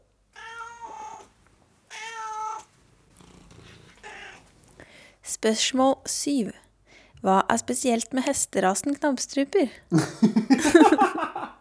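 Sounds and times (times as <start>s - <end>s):
cat meowing: 0.3s - 4.6s
soft rustling: 0.6s - 4.8s
speech: 5.4s - 6.6s, 7.2s - 11.3s
laughter: 9.9s - 11.5s.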